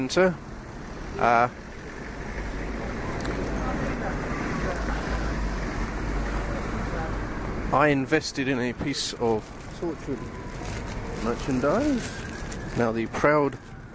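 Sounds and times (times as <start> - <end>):
speech: 0.0 - 0.5, 1.2 - 1.6, 7.7 - 10.4, 11.2 - 12.2, 12.8 - 13.7
busy city street traffic: 0.0 - 13.9.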